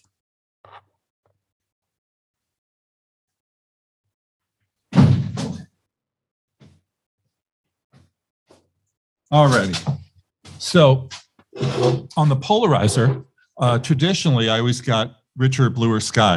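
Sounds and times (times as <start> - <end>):
door shutting with a solid thud: 4.9 - 5.7
speech: 9.3 - 10.0, 10.6 - 16.3.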